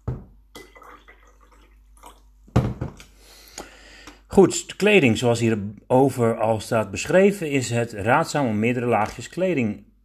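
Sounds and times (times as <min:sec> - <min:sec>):
fresh water pouring from a jug into a glass: 0:00.5 - 0:02.4
speech: 0:04.4 - 0:09.9.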